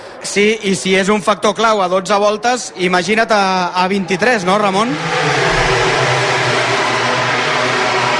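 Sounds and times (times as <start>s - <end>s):
speech: 0.4s - 5.6s
racing motorcycles passing by at speed: 4.5s - 8.1s.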